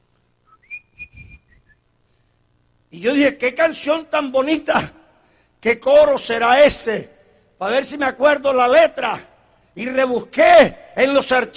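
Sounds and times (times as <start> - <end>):
person whistling a short bright melody: 0.5 - 1.8
speech: 2.9 - 5.0, 5.6 - 11.5.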